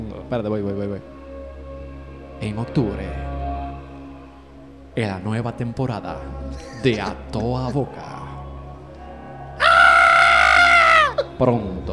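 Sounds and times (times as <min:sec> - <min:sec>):
speech: 0:00.3 - 0:01.2, 0:02.4 - 0:03.4, 0:05.0 - 0:08.2, 0:11.4 - 0:11.9
person screaming high-pitched: 0:09.6 - 0:11.3.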